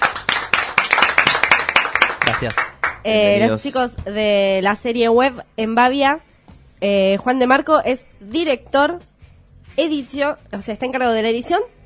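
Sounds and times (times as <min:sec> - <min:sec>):
applause from a small group: 0:00.0 - 0:03.1
speech: 0:02.3 - 0:09.1, 0:09.8 - 0:11.8.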